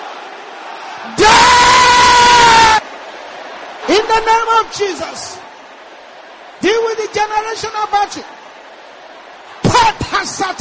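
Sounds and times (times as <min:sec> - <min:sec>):
men in a church congregation shouting together: 0:00.0 - 0:05.6
speech: 0:03.9 - 0:05.4, 0:06.6 - 0:08.4, 0:09.9 - 0:10.6.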